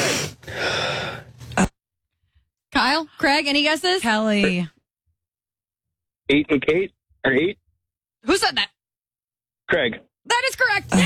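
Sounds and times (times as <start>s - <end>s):
heavy noisy breathing against the microphone: 0.0s - 1.4s
speech: 2.8s - 4.8s, 6.3s - 7.6s, 8.2s - 8.7s, 9.7s - 11.0s.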